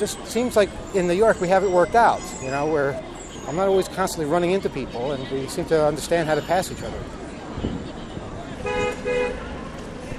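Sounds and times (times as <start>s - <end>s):
speech: 0.0s - 7.8s
steady rumble of street traffic in a busy bus area: 0.0s - 10.1s
bus horn honks: 8.6s - 9.4s.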